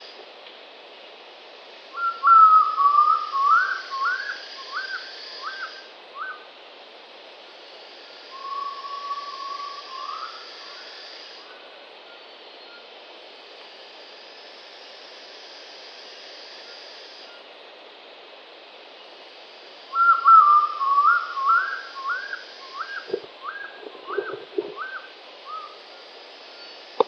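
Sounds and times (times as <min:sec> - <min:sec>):
Phodilus badius bay owl calling: 0:01.9 - 0:06.4, 0:08.1 - 0:12.8, 0:19.9 - 0:27.0.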